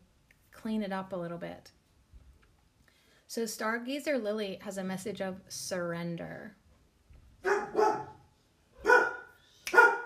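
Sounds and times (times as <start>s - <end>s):
speech: 0.6s - 1.8s, 3.3s - 6.6s
dog barking: 7.4s - 10.0s.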